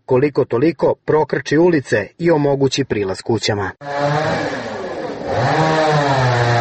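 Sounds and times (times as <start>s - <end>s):
speech: 0.1s - 4.7s
chainsaw cutting a fallen log blocking a road: 3.8s - 6.6s.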